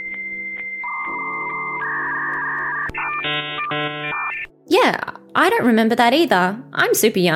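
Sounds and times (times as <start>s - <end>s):
dial-up modem shifting steady beeps: 0.0s - 4.5s
phone line dial tone: 0.0s - 4.5s
speech: 3.2s - 7.3s.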